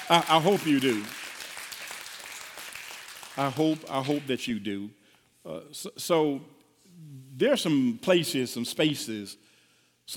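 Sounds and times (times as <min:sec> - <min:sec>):
congregation clapping during a church sermon: 0:00.0 - 0:04.5
speech: 0:00.1 - 0:01.2, 0:03.4 - 0:09.5.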